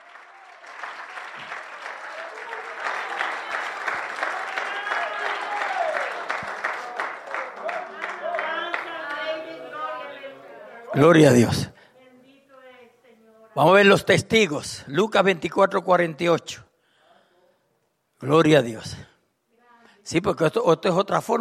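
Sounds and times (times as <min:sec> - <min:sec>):
audience applause with dense clapping: 0:00.0 - 0:10.2
scattered shouts and cheering voices: 0:01.4 - 0:10.8
speech: 0:11.0 - 0:11.8, 0:13.6 - 0:16.7, 0:18.2 - 0:19.1, 0:20.1 - 0:21.3.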